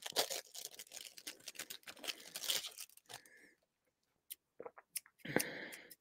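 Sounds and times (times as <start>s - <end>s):
crackling rustle of items pulled free of a package: 0.0s - 3.3s
plastic packaging crinkling and tearing: 0.0s - 3.4s.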